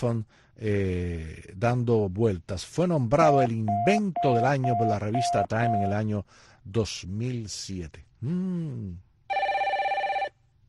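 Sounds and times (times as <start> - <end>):
speech: 0.0 - 9.1
warbling electronic telephone ringtone: 3.3 - 5.9, 9.3 - 10.3.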